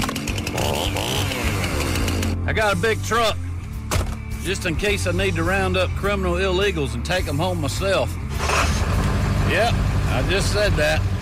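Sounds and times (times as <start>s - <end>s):
chainsaw engine revving: 0.0s - 2.4s, 8.3s - 9.4s
speech: 2.5s - 3.4s, 4.4s - 8.2s, 9.5s - 11.1s.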